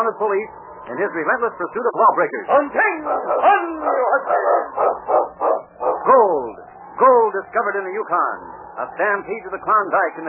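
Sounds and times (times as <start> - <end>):
speech: 0.0 - 4.7, 7.4 - 10.2
sled lead dog howling and barking: 2.5 - 6.2.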